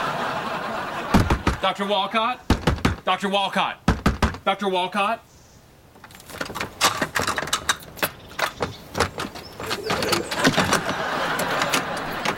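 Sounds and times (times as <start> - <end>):
laughter: 0.0 - 1.9, 9.9 - 12.3
speech: 1.6 - 2.5, 3.1 - 3.8, 4.4 - 5.3
many door locks being unlocked: 6.0 - 12.3.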